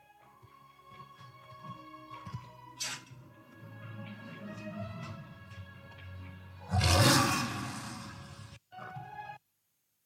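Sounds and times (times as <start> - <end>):
lion roaring: 6.6 - 8.6.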